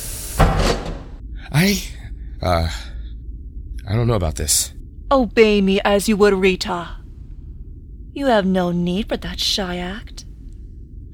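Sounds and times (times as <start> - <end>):
button-operated door shutting with a brief thud: 0.3 - 1.2
breathy vocal gasps or sighs: 1.2 - 3.9
speech: 1.6 - 2.9, 3.9 - 7.0, 8.2 - 10.3.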